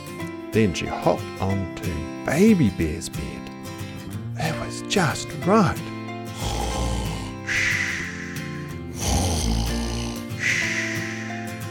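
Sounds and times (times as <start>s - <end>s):
speech: 0.5s - 3.5s, 4.4s - 5.9s
person reading a children's story imitating snoring: 6.3s - 11.6s.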